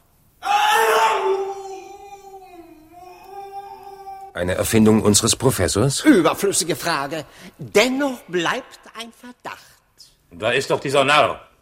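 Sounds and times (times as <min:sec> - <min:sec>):
man screaming muffled by a mask: 0:00.4 - 0:04.4
speech: 0:04.4 - 0:11.5.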